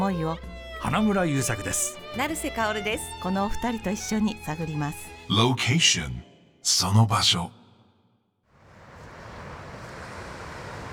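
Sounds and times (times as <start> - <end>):
speech: 0.1 - 7.6
gusting wind at a surf beach: 8.5 - 10.9
ocean surf at a surf beach: 8.6 - 10.9.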